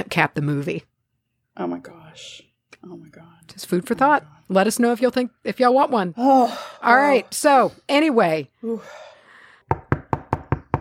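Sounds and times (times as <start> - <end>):
speech: 0.0 - 0.9, 1.6 - 9.1
firm knocking on a door by someone arriving: 9.7 - 10.7.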